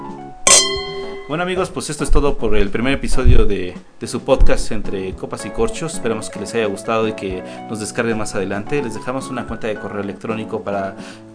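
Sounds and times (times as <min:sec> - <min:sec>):
wine glasses clinking in a toast: 0:00.5 - 0:01.6
speech: 0:01.3 - 0:11.3.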